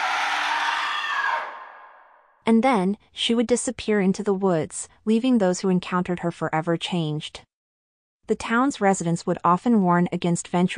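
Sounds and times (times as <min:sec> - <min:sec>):
woman's blood-curdling scream: 0:00.0 - 0:02.0
speech: 0:02.5 - 0:07.5, 0:08.3 - 0:10.7.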